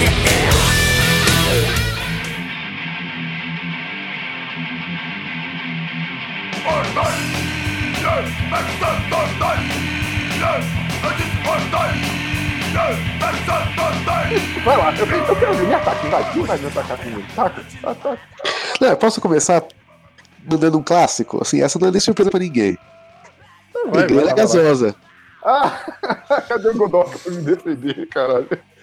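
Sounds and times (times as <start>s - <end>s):
driving rhythmic beat: 0.0s - 28.8s
laughter: 6.7s - 20.4s, 22.2s - 28.8s
loud brassy podcast intro jingle: 14.3s - 16.8s
speech: 16.1s - 19.8s, 20.4s - 23.0s, 23.8s - 28.7s.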